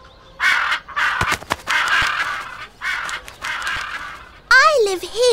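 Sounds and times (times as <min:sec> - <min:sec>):
birds at a zoo cawing harshly: 0:00.0 - 0:05.2
brief sharp clicks: 0:01.2 - 0:02.4, 0:03.0 - 0:04.2.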